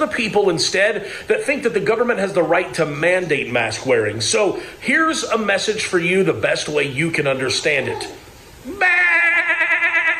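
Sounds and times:
speech: 0:00.0 - 0:09.0
human voice imitating a sheep's bleat: 0:07.9 - 0:10.1.

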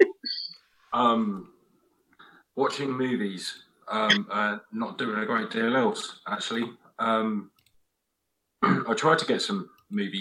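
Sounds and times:
speech: 0:00.9 - 0:01.6, 0:02.6 - 0:07.5, 0:08.6 - 0:10.1
stifled burp: 0:08.6 - 0:08.9.

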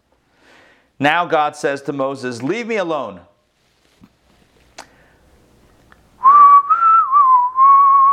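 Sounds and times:
speech: 0:01.0 - 0:03.3
person whistling a soap opera theme tune: 0:06.2 - 0:08.1.

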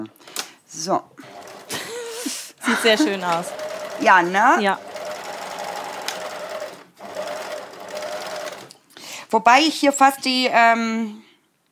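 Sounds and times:
speech: 0:00.0 - 0:01.4, 0:02.2 - 0:04.9, 0:09.3 - 0:11.3
laughter: 0:01.7 - 0:03.4
sewing machine stitching: 0:03.0 - 0:08.7.

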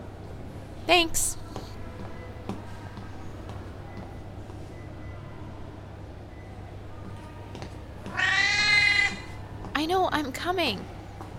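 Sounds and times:
low rumbling noise: 0:00.0 - 0:11.3
speech: 0:00.9 - 0:01.4, 0:10.1 - 0:11.0
cat meowing insistently: 0:08.1 - 0:09.4.

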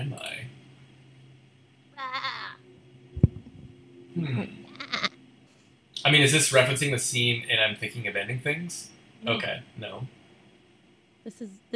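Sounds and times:
faint hum: 0:00.0 - 0:11.7
sheep bleating: 0:02.0 - 0:02.6, 0:04.6 - 0:05.2
low dull thump: 0:03.2 - 0:03.7
speech: 0:04.2 - 0:04.6, 0:06.1 - 0:10.2, 0:11.2 - 0:11.7.

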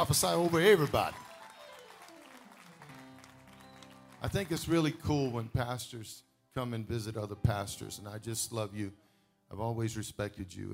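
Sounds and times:
speech: 0:00.0 - 0:01.2, 0:04.2 - 0:10.7
audience clapping hands: 0:00.0 - 0:05.7.

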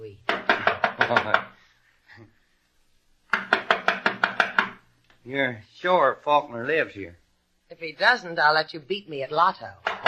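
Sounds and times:
firm knocking on a wooden door: 0:00.3 - 0:01.6, 0:03.3 - 0:04.8, 0:09.8 - 0:10.0
speech: 0:05.3 - 0:09.9.

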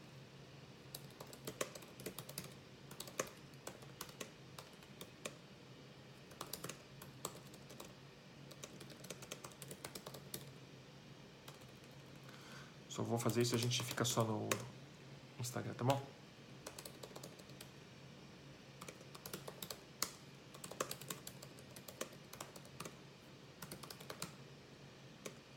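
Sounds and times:
typing on a computer keyboard: 0:00.9 - 0:05.4, 0:06.2 - 0:10.6, 0:11.5 - 0:12.2, 0:13.2 - 0:14.7, 0:16.6 - 0:17.7, 0:18.8 - 0:23.0, 0:23.6 - 0:24.4
speech: 0:13.0 - 0:14.8, 0:15.5 - 0:16.2.

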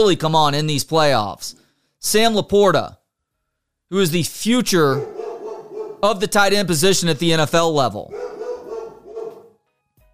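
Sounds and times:
speech: 0:00.0 - 0:03.0, 0:03.9 - 0:05.2, 0:06.0 - 0:08.4
pet dogs barking: 0:04.8 - 0:06.2, 0:08.1 - 0:09.6.

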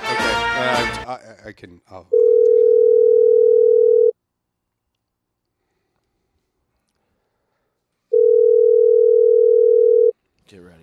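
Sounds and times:
speech: 0:00.7 - 0:03.3, 0:10.5 - 0:10.8
ringback tone of an outgoing phone call to a Radio Shack store: 0:02.1 - 0:04.1, 0:08.1 - 0:10.1.

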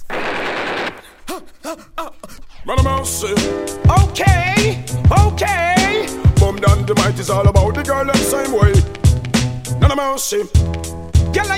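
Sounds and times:
rapid machine gun fire: 0:00.0 - 0:01.2
speech: 0:01.4 - 0:09.0, 0:09.8 - 0:11.5.

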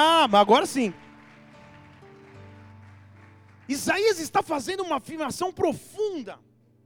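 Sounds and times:
speech: 0:00.0 - 0:01.0, 0:03.7 - 0:06.5
crowd applauding at a Christian worship service: 0:00.0 - 0:05.3.

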